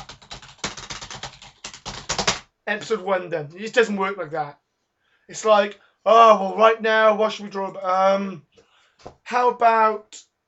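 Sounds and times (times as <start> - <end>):
quiet typing on a computer keyboard: 0.0 - 2.4
speech: 2.7 - 4.6, 5.3 - 10.2.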